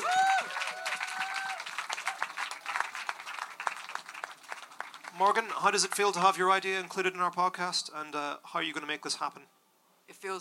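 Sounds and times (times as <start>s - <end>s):
high cheers and whoops: 0.0s - 2.6s
audience applause: 0.0s - 6.3s
speech: 5.2s - 9.6s.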